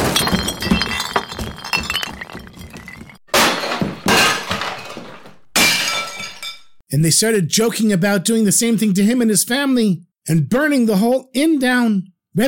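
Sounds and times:
soldiers smashing tables and chairs in an inn: 0:00.0 - 0:06.6
speech: 0:06.9 - 0:12.4.

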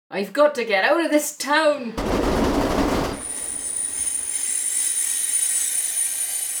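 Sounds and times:
speech: 0:00.1 - 0:02.6
train wheels high-pitched squeal while slowing: 0:03.2 - 0:06.5.

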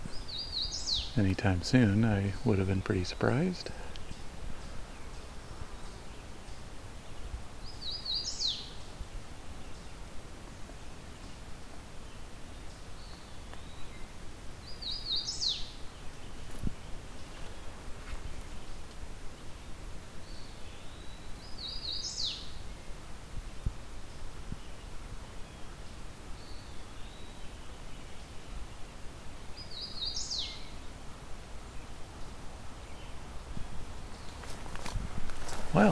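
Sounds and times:
hooded warbler singing: 0:00.0 - 0:10.1, 0:11.1 - 0:18.8, 0:20.2 - 0:22.9, 0:23.6 - 0:30.9, 0:35.5 - 0:35.9
hiss: 0:00.0 - 0:35.9
speech: 0:01.2 - 0:03.8.

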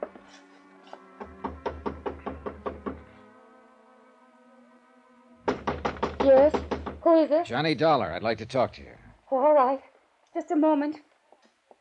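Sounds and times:
firm knocks on an apartment door: 0:01.2 - 0:03.2, 0:05.5 - 0:07.2
speech: 0:06.3 - 0:11.1.

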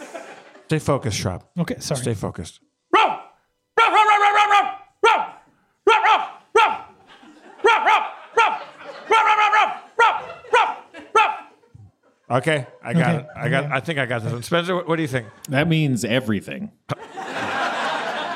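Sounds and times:
laughter: 0:00.0 - 0:00.8, 0:05.9 - 0:15.9, 0:16.9 - 0:18.3
speech: 0:00.7 - 0:02.7, 0:12.4 - 0:17.2
person imitating dog barks and yelps: 0:02.9 - 0:07.0, 0:07.6 - 0:11.5.

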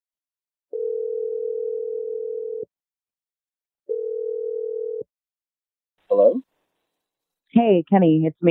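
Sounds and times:
telephone ringing tone: 0:00.7 - 0:02.7, 0:03.9 - 0:05.1
speech: 0:07.6 - 0:08.4.

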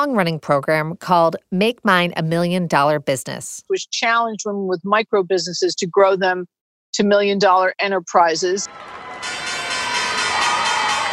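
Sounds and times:
speech: 0:00.0 - 0:09.4
faint crowd cheering: 0:08.6 - 0:11.1
opening bell ringing at the New York Stock Exchange: 0:08.7 - 0:11.1.

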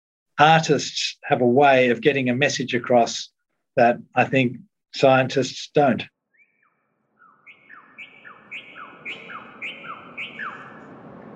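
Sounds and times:
speech: 0:00.4 - 0:06.1
clear descending whistled bird chirps: 0:06.3 - 0:11.3
recorded songs of locally extinct native birds from speakers in an alley art installation: 0:06.3 - 0:11.3.

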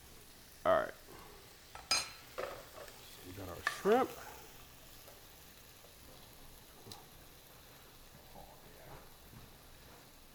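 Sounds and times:
sauce with half and half sizzling in a pan: 0:00.0 - 0:10.3
utensil scraping and clinking against cookware: 0:01.7 - 0:03.0.

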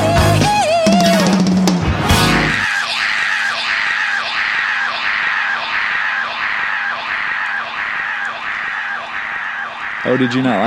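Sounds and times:
dense rock song: 0:00.0 - 0:03.6
long loud scream in a song: 0:02.6 - 0:10.6
speech: 0:10.1 - 0:10.6.

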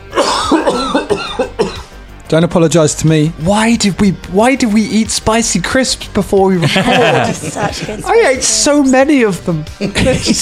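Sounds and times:
person coughing: 0:00.1 - 0:02.0
speech: 0:02.3 - 0:10.3
laughter: 0:06.6 - 0:08.3, 0:09.8 - 0:10.3.

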